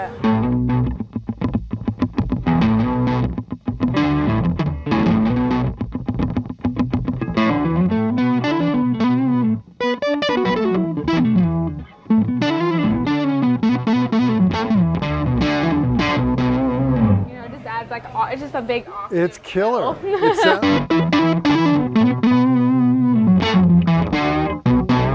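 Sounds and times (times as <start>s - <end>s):
speech: 0.0s - 0.2s, 18.8s - 21.0s
electric guitar through octave and distortion pedals playing a fuzzy riff: 0.0s - 17.4s, 20.6s - 25.1s
laughter: 19.8s - 20.8s.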